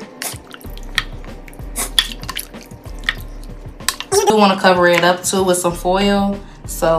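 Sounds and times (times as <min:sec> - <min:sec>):
food being stirred in a crock pot: 0:00.1 - 0:05.4
sharp little drips: 0:00.4 - 0:04.1
speech: 0:04.3 - 0:06.9.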